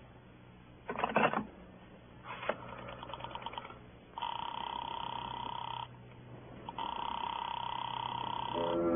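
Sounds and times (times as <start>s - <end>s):
telephone line clicks and rattles as a call is put through: 0.9s - 1.5s, 2.5s - 3.8s
steady buzzing telephone ring in long bursts: 2.6s - 5.9s, 6.7s - 8.8s.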